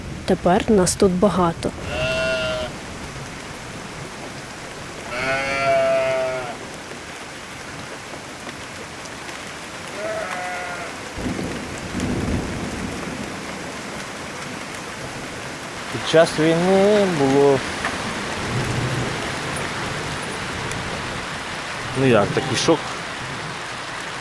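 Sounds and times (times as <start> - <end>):
heavy summer downpour hissing: 0.0 - 24.2
speech: 0.3 - 2.1, 16.1 - 17.8, 22.0 - 22.9
sheep bleating as they run for shelter: 1.8 - 2.8, 5.0 - 6.6, 9.9 - 11.0.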